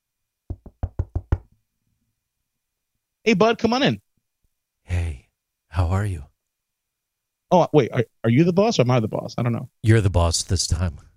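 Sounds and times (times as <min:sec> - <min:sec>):
firm knocking on a door: 0:00.5 - 0:01.5
speech: 0:03.2 - 0:04.0, 0:05.8 - 0:06.3, 0:07.5 - 0:11.1.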